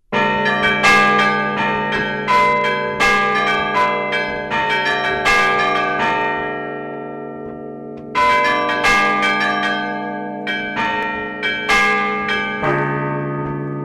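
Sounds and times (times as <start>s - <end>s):
church carillon ringing an Easter-season chime: 0.1s - 13.8s.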